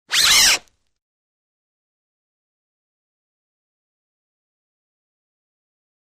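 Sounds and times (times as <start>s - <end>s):
rope zuzz slide: 0.1s - 0.7s.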